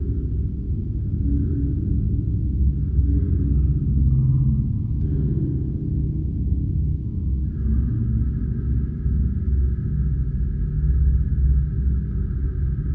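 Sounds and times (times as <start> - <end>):
calm sci-fi space ambience: 0.0 - 12.9.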